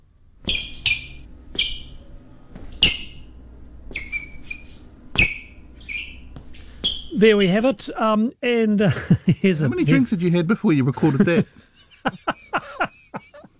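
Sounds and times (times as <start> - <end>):
shoes squeaking on an office hallway floor: 0.4 - 8.1, 9.8 - 10.2
soft footstep thuds: 0.4 - 8.1
speech: 7.2 - 12.2
laughter: 8.8 - 13.5.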